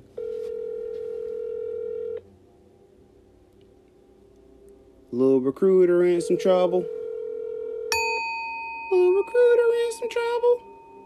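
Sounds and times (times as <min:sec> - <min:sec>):
electronic phone ringing tone on a phone line: 0:00.0 - 0:02.2, 0:06.0 - 0:11.0
speech: 0:05.1 - 0:07.0.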